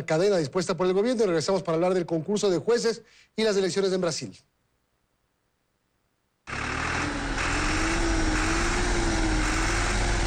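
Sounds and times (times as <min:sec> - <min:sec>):
speech: 0:00.0 - 0:04.6
tractor engine running: 0:06.5 - 0:10.2.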